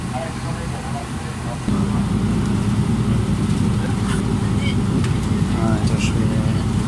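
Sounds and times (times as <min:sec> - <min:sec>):
faint voices: 0:00.0 - 0:02.2, 0:03.6 - 0:06.8
bus engine droning uphill on mountain switchbacks: 0:00.0 - 0:06.8.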